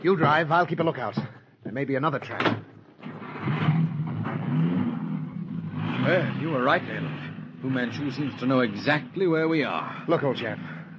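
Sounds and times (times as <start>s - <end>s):
speech: 0.0s - 2.7s, 3.4s - 3.9s, 6.0s - 10.8s
car engine starting and revving as it accelerates: 3.0s - 10.9s.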